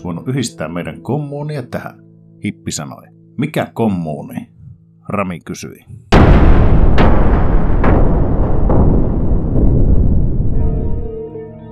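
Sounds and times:
speech: 0:00.0 - 0:04.5, 0:05.1 - 0:06.1
very loud explosion with rolling rumble: 0:06.1 - 0:11.0.

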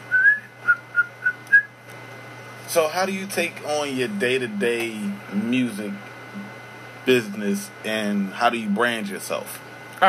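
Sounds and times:
low steady hum: 0:00.0 - 0:10.0
person whistling: 0:00.1 - 0:01.7
speech: 0:02.8 - 0:06.1, 0:07.1 - 0:10.0.

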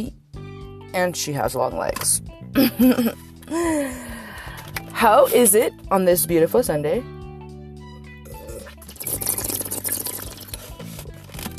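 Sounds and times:
speech: 0:00.0 - 0:00.2, 0:00.9 - 0:04.1, 0:05.0 - 0:07.2
soft gulping of someone drinking water: 0:08.3 - 0:10.6
water sloshing in a tall glass: 0:08.5 - 0:10.8.

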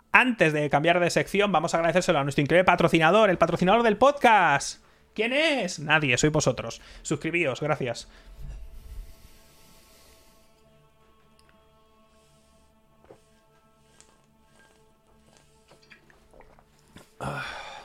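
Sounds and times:
speech: 0:00.2 - 0:08.4
person drinking water, gulping and swallowing: 0:15.6 - 0:17.8.

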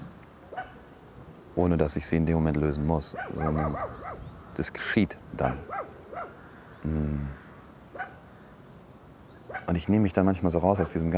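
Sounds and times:
dog barking: 0:00.5 - 0:00.8, 0:03.0 - 0:04.3, 0:05.6 - 0:06.4, 0:07.9 - 0:08.2, 0:09.5 - 0:09.8
speech: 0:01.6 - 0:04.0, 0:04.6 - 0:05.9, 0:06.8 - 0:07.4, 0:09.6 - 0:11.1.

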